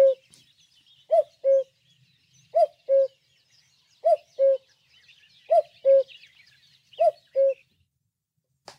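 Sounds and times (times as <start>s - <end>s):
common cuckoo calling its two-note cu-coo: 0.0s - 0.4s, 1.0s - 1.8s, 2.4s - 3.2s, 4.0s - 7.7s
faint twittering of other birds: 0.0s - 8.1s.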